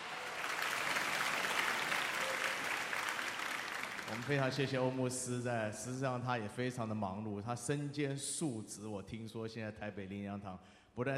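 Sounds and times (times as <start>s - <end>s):
crowd applauding to welcome a pastor: 0.0s - 5.0s
speech: 4.1s - 11.1s.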